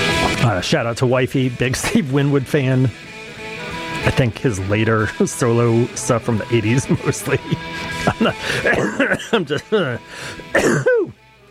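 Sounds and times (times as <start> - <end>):
speech: 0.5 - 3.1, 4.0 - 11.2
laughter: 6.6 - 10.0
person grunting: 7.6 - 10.0
person coughing raspily: 7.7 - 11.2
throat clearing: 8.1 - 11.2.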